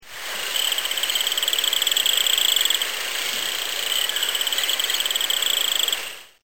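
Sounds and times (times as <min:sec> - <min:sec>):
loud steady hiss: 0:00.0 - 0:06.4
frog calling with a high-pitched pulsed trill: 0:00.5 - 0:02.8, 0:03.7 - 0:06.0.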